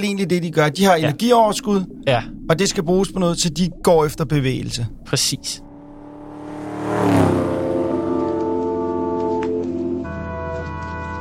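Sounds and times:
speech: 0.0s - 5.7s
car engine revving and accelerating: 1.1s - 9.8s.

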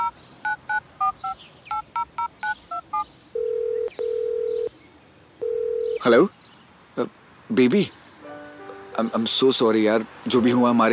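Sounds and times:
telephone keypad tones while dialing a number: 0.0s - 4.7s, 5.4s - 6.0s
speech: 6.0s - 6.4s, 7.0s - 8.0s, 9.0s - 10.9s.

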